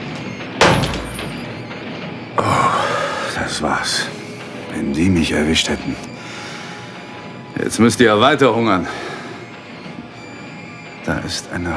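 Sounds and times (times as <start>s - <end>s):
door opening with heavy thud and rattle: 0.0s - 1.9s
low hum: 0.0s - 11.7s
speech: 3.6s - 6.1s, 7.6s - 9.1s, 11.3s - 11.7s.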